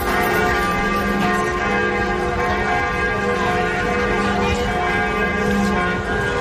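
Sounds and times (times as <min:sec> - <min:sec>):
church bells pealing: 0:00.0 - 0:06.3.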